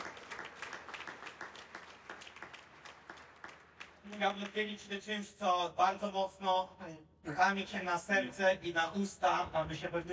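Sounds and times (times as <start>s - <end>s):
audience applause in a church hall at a sermon: 0.0s - 4.6s
speech: 4.1s - 10.1s.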